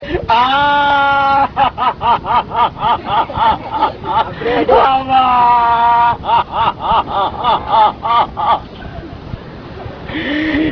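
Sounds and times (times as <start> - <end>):
wail: 0.0 - 1.7, 4.5 - 6.4
laughter: 0.1 - 9.2.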